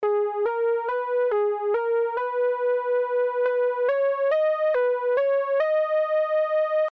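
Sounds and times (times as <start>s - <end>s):
verse melody: 0.0s - 6.9s.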